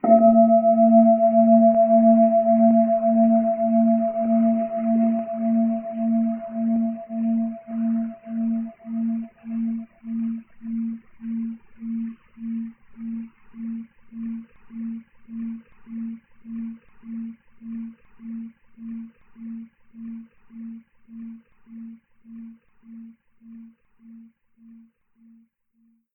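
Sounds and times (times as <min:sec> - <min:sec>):
Tibetan singing bowl: 0:00.0 - 0:20.8.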